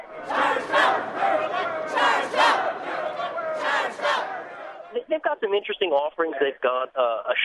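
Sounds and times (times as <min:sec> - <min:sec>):
group of workers cheering at auto show: 0:00.0 - 0:04.9
speech: 0:05.3 - 0:07.4.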